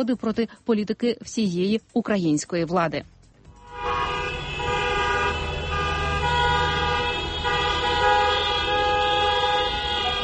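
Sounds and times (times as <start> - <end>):
speech: 0.0 - 3.2
chorus of protesters' car horns honking: 3.6 - 10.2.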